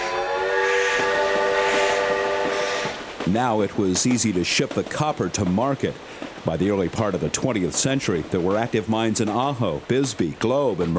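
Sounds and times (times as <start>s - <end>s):
train whistle: 0.0s - 3.1s
rumble of a moving train: 0.0s - 8.6s
wheels clacking on the rails: 0.0s - 10.9s
speech: 3.2s - 10.9s.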